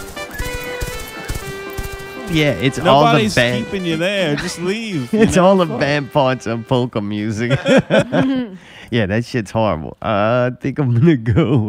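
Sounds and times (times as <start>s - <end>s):
horse hooves clip-clopping: 0.0s - 3.8s
laughter: 2.3s - 6.6s, 7.2s - 8.6s
speech: 2.3s - 11.6s.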